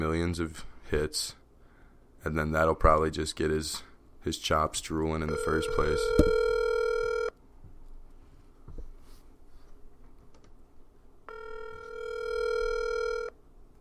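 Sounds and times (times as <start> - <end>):
speech: 0.0 - 1.4, 2.2 - 6.4
telephone ring tone on an outgoing call: 5.3 - 7.3, 11.3 - 13.4.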